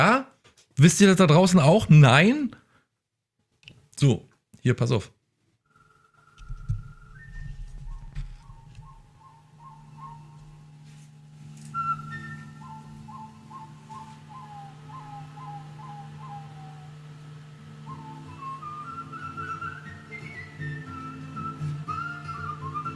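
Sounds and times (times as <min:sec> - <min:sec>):
speech: 0:00.0 - 0:02.6, 0:04.0 - 0:05.2
person whistling a melody: 0:06.3 - 0:22.9
low steady musical backing: 0:06.4 - 0:22.9.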